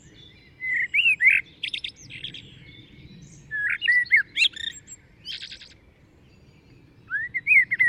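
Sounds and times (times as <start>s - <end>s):
faint low background noise: 0.0s - 7.8s
common blackbird Turdus merula whistled phrases and chattering notes: 0.6s - 2.5s, 3.5s - 5.8s, 7.1s - 7.8s.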